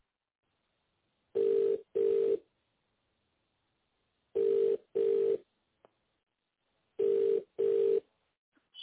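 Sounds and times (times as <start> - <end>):
faint sounds on a telephone line: 1.3 - 2.5, 4.3 - 5.5, 7.0 - 8.1
telephone ringback tone of a call connecting: 1.4 - 2.4, 4.4 - 5.4, 7.0 - 8.0.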